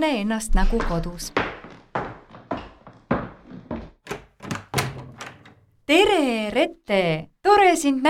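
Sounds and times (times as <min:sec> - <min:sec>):
speech: 0:00.0 - 0:01.5, 0:05.9 - 0:08.0
door being opened at home for arriving guests: 0:00.8 - 0:05.8.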